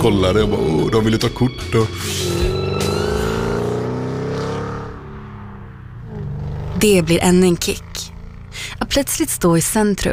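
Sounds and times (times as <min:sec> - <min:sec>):
speech: 0:00.0 - 0:02.5, 0:06.8 - 0:07.9, 0:09.0 - 0:10.1
car engine revving: 0:00.0 - 0:09.8.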